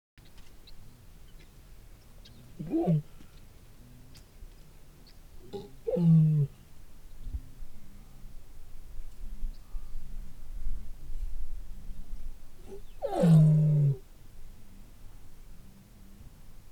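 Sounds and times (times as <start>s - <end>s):
lions roaring: 2.6s - 3.1s, 5.5s - 6.6s, 12.6s - 14.0s.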